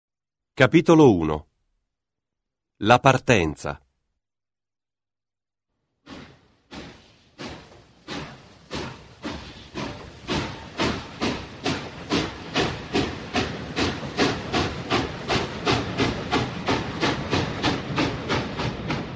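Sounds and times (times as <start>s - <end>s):
speech: 0.6s - 1.5s, 2.8s - 3.8s
steam train chuffing as it pulls away from a station: 6.0s - 19.1s.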